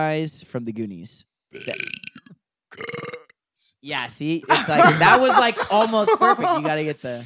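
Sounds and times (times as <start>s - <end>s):
speech: 0.0s - 2.1s, 3.8s - 7.2s
loud guttural burp voiced almost like speech: 1.5s - 3.4s
laughter: 4.5s - 7.2s.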